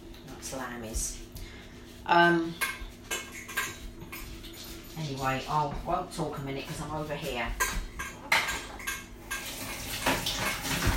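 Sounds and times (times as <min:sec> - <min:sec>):
speech: 0:00.5 - 0:01.3, 0:02.1 - 0:02.7, 0:05.0 - 0:07.7
cutlery clinking against dishes while dog food is being prepared: 0:02.6 - 0:04.6, 0:07.5 - 0:10.9.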